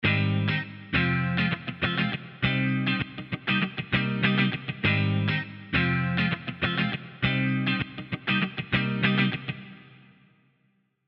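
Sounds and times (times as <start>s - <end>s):
clean guitar: 0.0s - 10.3s.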